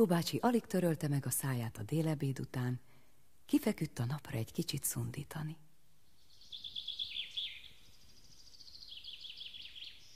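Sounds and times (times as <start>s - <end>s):
speech: 0.0s - 2.9s, 3.5s - 5.6s
two great tits chirping on a beech branch: 6.0s - 10.1s.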